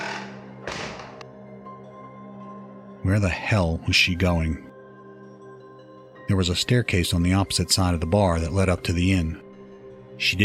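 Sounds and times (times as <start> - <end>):
heavy bar door swinging shut with a bang: 0.0 - 1.2
speech: 3.0 - 4.7, 6.3 - 9.4, 10.2 - 10.4.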